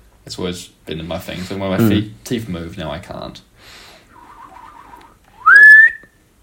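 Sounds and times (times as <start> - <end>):
speech: 0.3 - 3.8
person trying to whistle: 4.1 - 6.1.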